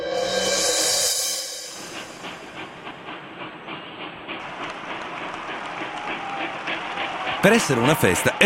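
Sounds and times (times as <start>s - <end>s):
steam hiss: 0.0s - 8.4s
train clickety-clack on rails between Rome and Naples in 1863: 1.8s - 8.4s
speech: 7.4s - 8.4s.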